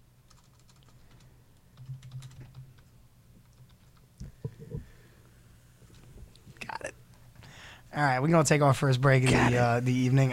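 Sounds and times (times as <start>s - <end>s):
typing on a computer keyboard: 0.3s - 1.2s, 1.8s - 4.1s
speech: 7.9s - 10.3s.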